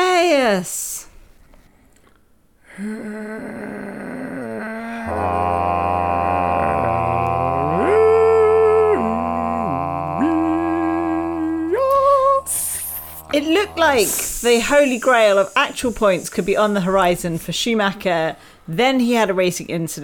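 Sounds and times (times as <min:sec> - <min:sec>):
speech: 0:00.4 - 0:00.8, 0:02.8 - 0:03.8, 0:13.4 - 0:20.0
low steady hum: 0:01.1 - 0:19.3
dog howling: 0:05.1 - 0:14.5.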